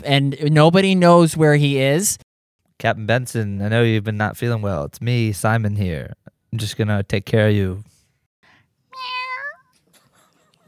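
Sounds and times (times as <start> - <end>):
speech: 0.0 - 2.2, 2.8 - 7.9
cat meowing: 8.9 - 9.8.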